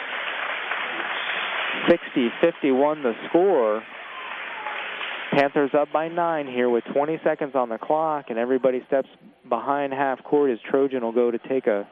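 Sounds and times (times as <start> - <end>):
crowd applauding at a basketball game: 0.0 - 7.5
speech: 1.8 - 4.0, 5.3 - 11.8.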